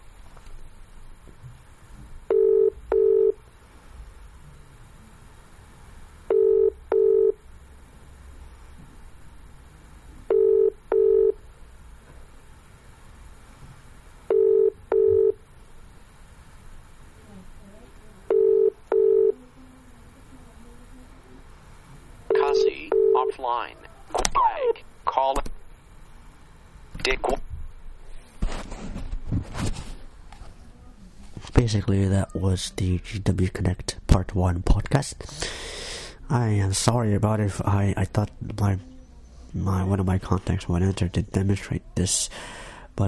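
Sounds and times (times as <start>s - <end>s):
faint hum: 0.0s - 43.0s
paired electronic telephone tones dialing a conference call: 14.3s - 15.4s, 18.3s - 19.4s, 22.3s - 23.4s
speech: 23.5s - 23.8s, 31.7s - 38.9s, 39.5s - 43.0s.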